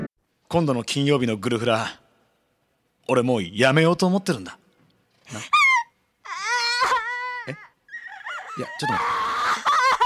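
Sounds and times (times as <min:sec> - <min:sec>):
speech: 0:00.5 - 0:02.0, 0:03.1 - 0:04.6, 0:05.3 - 0:05.6, 0:07.5 - 0:07.7, 0:08.6 - 0:09.3
exaggerated crying and wailing from a person: 0:05.3 - 0:10.0.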